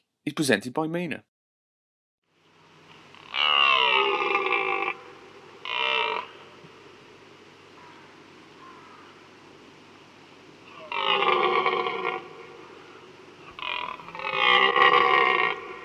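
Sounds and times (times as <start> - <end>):
speech: 0.2 - 1.3
red deer stag bellowing during the autumn rut: 3.1 - 6.8, 10.6 - 15.8.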